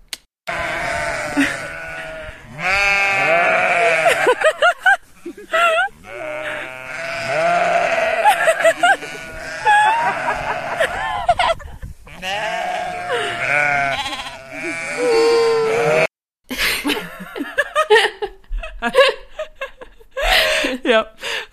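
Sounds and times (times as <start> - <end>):
flock of sheep bleating loudly: 0.5 - 4.6, 5.9 - 11.2, 12.1 - 16.1
laughter: 1.4 - 2.2, 3.6 - 6.8, 8.0 - 11.9, 16.5 - 21.0.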